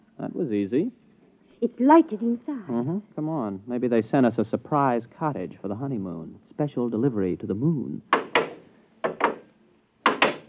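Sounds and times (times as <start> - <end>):
speech: 0.2 - 1.0, 1.6 - 8.2
wooden door with a lock shutting: 8.2 - 9.4, 10.1 - 10.4.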